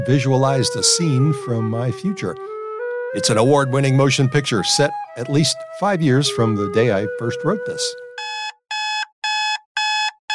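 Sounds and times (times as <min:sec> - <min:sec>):
speech: 0:00.0 - 0:08.0
alarm clock beeping: 0:08.2 - 0:10.3.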